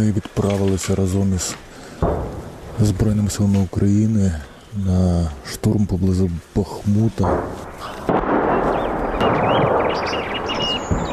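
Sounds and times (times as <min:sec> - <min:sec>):
speech: 0:00.0 - 0:02.2, 0:02.8 - 0:08.2
birds chirping faintly: 0:00.0 - 0:06.5, 0:07.7 - 0:11.1
artillery fire before an assault near Bakhmut: 0:02.0 - 0:03.1, 0:07.2 - 0:11.1.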